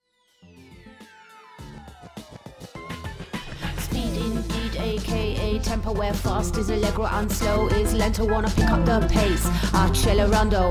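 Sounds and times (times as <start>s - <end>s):
rapping: 3.7s - 10.6s.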